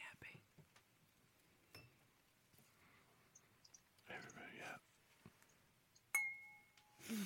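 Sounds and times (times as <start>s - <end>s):
glasses clinking in a toast: 1.7s - 2.0s, 6.0s - 7.0s
speech: 4.1s - 4.9s, 7.0s - 7.2s.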